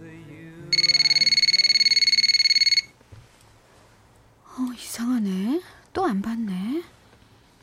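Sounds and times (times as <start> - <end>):
phone ringing with a trilling electronic tone, unanswered: 0.7 - 3.0
speech: 4.8 - 7.0.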